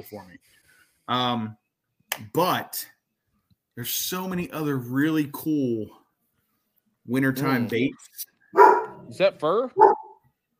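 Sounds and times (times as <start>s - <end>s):
speech: 0.0s - 1.6s, 2.2s - 3.0s, 3.8s - 6.0s, 7.1s - 10.0s
dog barking: 8.5s - 9.1s, 9.8s - 10.2s.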